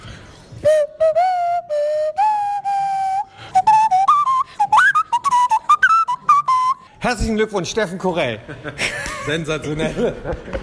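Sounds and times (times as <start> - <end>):
nose flute playing a birthday melody: 0.6 - 7.0
speech: 7.0 - 10.6
laughter: 8.4 - 10.6.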